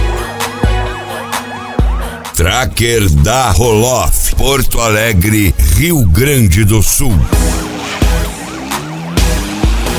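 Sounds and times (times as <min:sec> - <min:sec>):
police sirens wailing during a police chase: 0:00.0 - 0:09.9
speech: 0:02.4 - 0:07.7.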